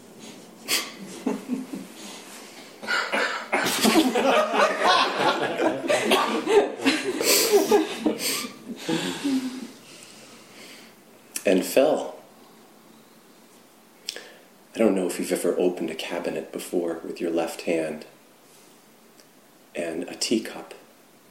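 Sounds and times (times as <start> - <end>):
laughter: 1.0 - 2.2, 3.1 - 9.7
person coughing with harsh breathy hacking: 2.8 - 4.0
speech: 11.5 - 12.1, 15.2 - 18.2, 20.0 - 20.8.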